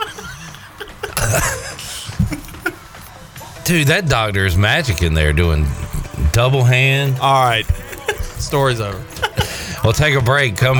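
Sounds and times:
laughter: 0.0s - 3.1s, 4.8s - 10.7s
two people coughing on cue: 0.8s - 2.8s, 7.7s - 9.8s
speech: 1.3s - 1.7s, 3.7s - 7.8s, 8.5s - 9.1s, 9.8s - 10.7s.

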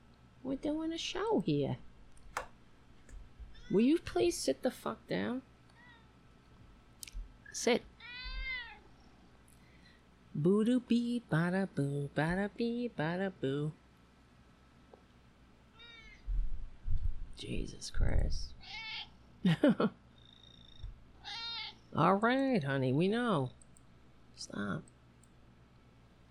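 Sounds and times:
speech: 0.4s - 1.9s, 3.7s - 5.5s, 7.6s - 7.9s, 10.4s - 13.8s, 17.4s - 20.0s, 22.0s - 23.6s, 24.4s - 24.9s
pet cat meowing insistently: 8.0s - 8.8s, 15.8s - 16.3s, 18.6s - 19.1s, 21.2s - 21.8s.

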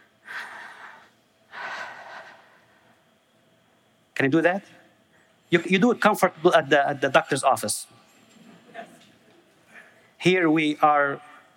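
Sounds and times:
group of people taking deep breaths during a prayer: 0.2s - 3.0s
speech: 4.2s - 4.8s, 5.5s - 8.0s, 10.2s - 11.3s.

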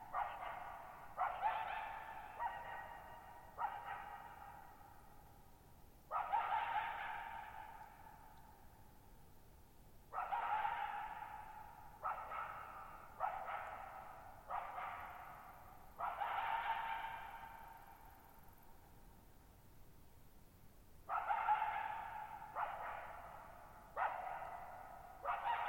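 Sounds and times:
lone wild coyote calling at night in high mountain meadow: 0.0s - 4.8s, 6.1s - 8.2s, 10.2s - 18.0s, 21.1s - 25.6s.

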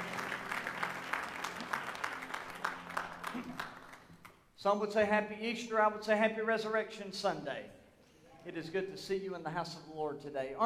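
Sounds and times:
congregation applauding the band: 0.0s - 4.4s
speech: 4.6s - 7.8s, 8.4s - 10.6s.

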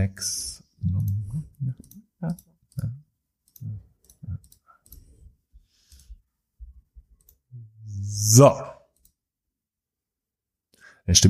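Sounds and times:
speech: 0.0s - 1.1s, 8.3s - 8.8s, 11.1s - 11.2s
computer mouse clicks setting up a Zoom call: 1.0s - 5.3s, 7.2s - 7.5s.

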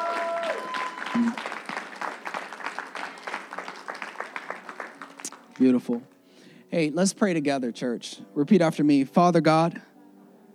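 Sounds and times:
church audience clapping and applauding: 0.0s - 6.2s
speech: 1.2s - 1.6s, 5.6s - 6.1s, 6.7s - 9.9s.

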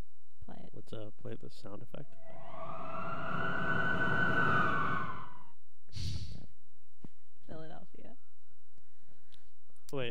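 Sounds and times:
speech: 0.7s - 2.7s, 3.3s - 3.9s
ambulance siren wailing: 2.2s - 5.5s
brief burst of noise: 2.2s - 6.4s.

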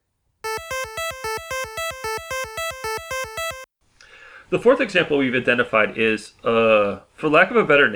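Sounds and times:
bright buzzy electronic arpeggio with offset echo: 0.5s - 3.7s
speech: 4.5s - 7.9s.

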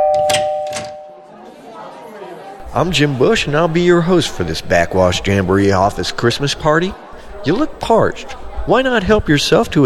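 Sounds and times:
doorbell chiming: 0.0s - 1.4s
speech: 2.8s - 9.8s.

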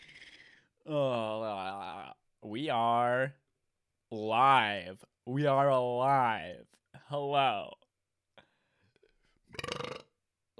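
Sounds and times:
speech: 0.9s - 1.2s, 2.5s - 3.4s, 4.1s - 7.8s
long rattling burp: 9.5s - 10.5s.

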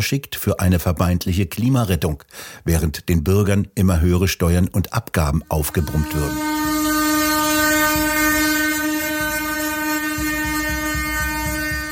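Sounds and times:
speech: 0.0s - 6.9s
tractor horns honking in a protest convoy: 5.4s - 11.9s.

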